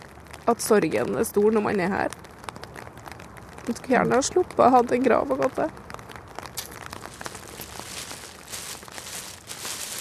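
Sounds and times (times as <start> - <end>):
steady outdoor noise: 0.0 - 10.0
speech: 0.5 - 2.2, 3.7 - 5.8
soft crunching footsteps: 6.5 - 10.0
plastic bag of decorations rustling at a grave: 6.6 - 10.0.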